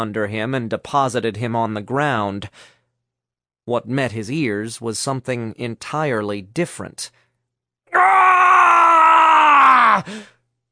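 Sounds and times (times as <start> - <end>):
speech: 0.0 - 2.8, 3.7 - 7.2, 10.0 - 10.4
man's gut-wrenching scream: 7.9 - 10.3
man's short strained gasp: 10.0 - 10.5.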